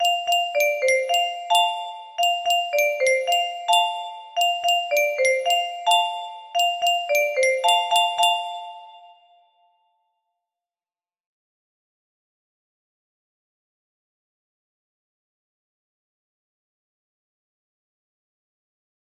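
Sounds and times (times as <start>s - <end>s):
music box melody: 0.0s - 9.5s.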